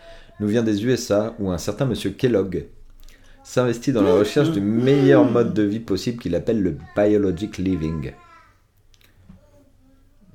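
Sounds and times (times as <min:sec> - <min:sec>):
speech: 0:00.4 - 0:02.8, 0:03.5 - 0:08.2
faint baby babbling and cooing: 0:04.0 - 0:05.7, 0:06.8 - 0:08.6.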